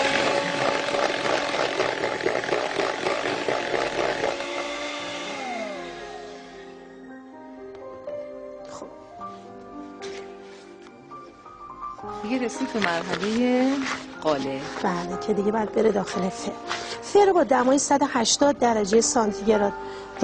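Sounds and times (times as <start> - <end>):
electric hand mixer beating cake batter with flour: 0.0 - 7.0
speech: 12.5 - 20.2.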